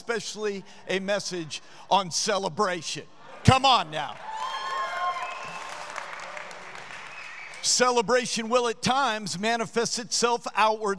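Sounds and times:
speech: 0.1s - 4.3s, 7.6s - 10.9s
crowd clapping and cheering: 4.1s - 7.8s.

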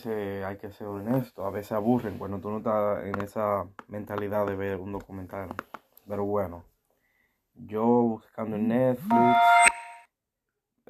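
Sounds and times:
speech: 0.0s - 6.7s, 7.6s - 9.8s
mobile phone notification chime: 9.1s - 10.0s.

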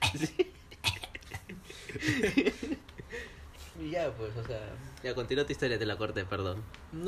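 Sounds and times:
person imitating a cat coughing up a hairball: 0.0s - 1.6s
speech: 0.1s - 0.5s, 3.9s - 7.0s
laughter: 0.2s - 3.4s.

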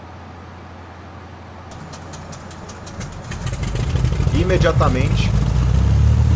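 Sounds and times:
aircraft piston engine cranking and starting by ignition key: 1.7s - 6.3s
speech: 4.4s - 5.4s.

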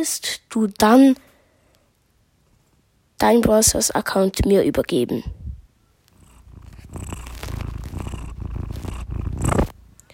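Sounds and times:
speech: 0.0s - 1.3s, 3.2s - 5.4s
cat purring: 5.3s - 9.8s.

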